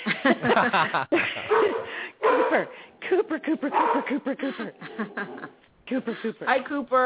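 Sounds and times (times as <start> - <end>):
laughter: 0.0 - 2.0, 3.2 - 6.3
speech: 0.2 - 1.8, 2.4 - 7.0
golden doodle dog barking and yipping: 1.5 - 2.8, 3.7 - 4.2.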